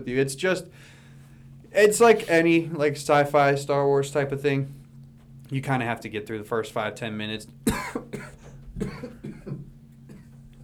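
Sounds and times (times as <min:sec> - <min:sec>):
speech: 0:00.0 - 0:01.0, 0:01.7 - 0:04.8, 0:05.5 - 0:09.2
rapid coughing fit with harsh throaty coughs: 0:07.6 - 0:10.4.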